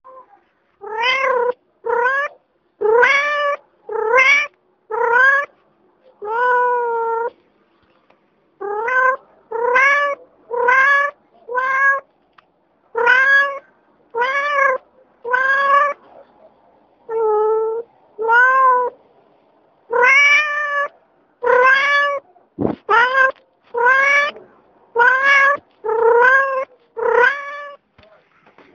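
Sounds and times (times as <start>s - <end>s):
well-behaved cat meowing quickly: 0.1s - 5.5s, 6.2s - 7.3s, 8.6s - 12.0s, 13.0s - 13.6s, 14.2s - 16.0s, 17.1s - 19.0s, 19.9s - 22.2s, 22.8s - 27.8s.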